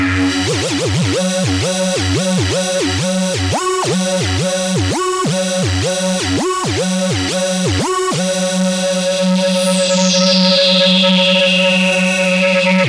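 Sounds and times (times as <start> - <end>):
Novation UltraNova synthesizer factory patch sequence: 0.2 - 12.8.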